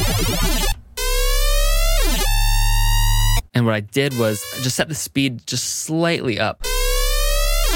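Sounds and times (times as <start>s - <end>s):
square-wave synth with unison detune through a phaser in octave mode: 0.0s - 3.4s, 6.6s - 7.7s
speech: 3.6s - 6.7s.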